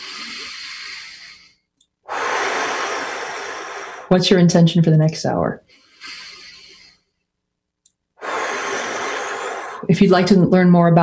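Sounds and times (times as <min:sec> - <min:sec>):
deep breaths during a guided relaxation exercise: 0:00.0 - 0:04.2, 0:05.6 - 0:07.3, 0:08.2 - 0:10.0
speech: 0:04.1 - 0:05.8, 0:09.9 - 0:11.0.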